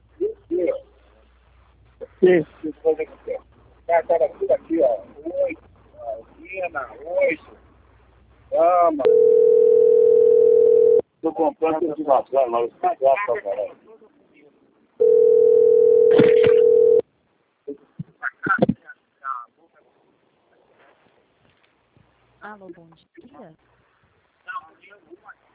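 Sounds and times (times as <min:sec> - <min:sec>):
speech: 0:02.2 - 0:05.6, 0:06.2 - 0:07.6, 0:08.5 - 0:09.6, 0:11.2 - 0:13.8, 0:22.6 - 0:23.7
telephone line tone during a call transfer: 0:09.0 - 0:11.0, 0:15.0 - 0:17.0.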